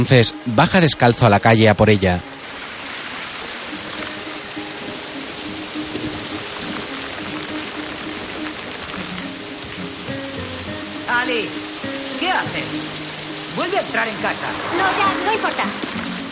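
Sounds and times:
speech: 0.0s - 2.3s
heavy rain pouring down: 0.0s - 16.2s.

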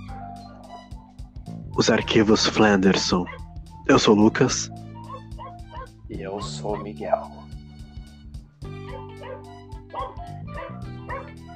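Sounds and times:
dog barking in short sharp bursts with higher yips: 0.1s - 1.0s, 3.2s - 3.5s, 5.0s - 7.4s, 8.8s - 11.4s
speech: 1.8s - 4.8s, 6.1s - 7.4s.

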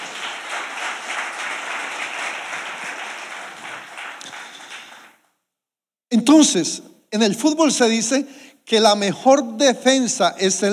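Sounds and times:
large crowd applauding: 0.0s - 5.2s
speech: 6.1s - 10.7s.

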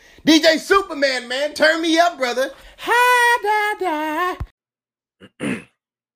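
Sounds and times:
speech: 0.2s - 4.5s
person clearing throat: 5.2s - 5.8s.

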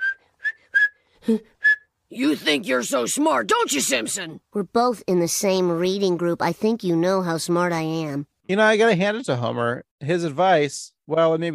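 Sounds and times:
person whistling a tune: 0.0s - 1.9s
speech: 1.3s - 1.5s, 2.1s - 11.5s.

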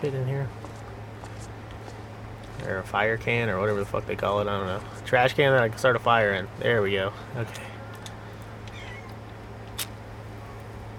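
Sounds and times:
speech: 0.0s - 0.8s, 2.6s - 7.8s
steady low electrical hum: 0.0s - 10.9s
cat meowing: 8.7s - 9.2s
sharp click: 9.7s - 10.0s.

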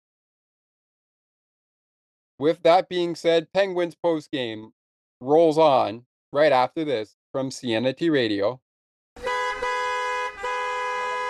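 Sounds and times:
speech: 2.4s - 8.6s
car horns honking in busy traffic: 9.2s - 11.2s.

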